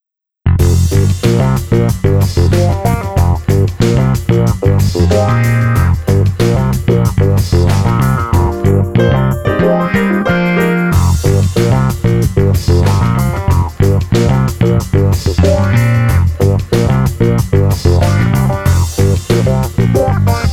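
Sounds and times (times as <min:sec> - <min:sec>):
clavinet groove: 0:00.5 - 0:20.5.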